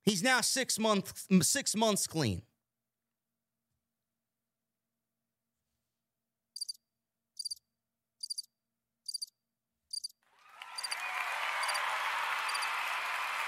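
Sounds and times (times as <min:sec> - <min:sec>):
speech: 0:00.1 - 0:02.5
crickets chirping: 0:06.6 - 0:06.8, 0:07.4 - 0:07.6, 0:08.2 - 0:08.5, 0:09.1 - 0:09.3, 0:09.9 - 0:10.2
crowd noise like applause: 0:10.3 - 0:13.4.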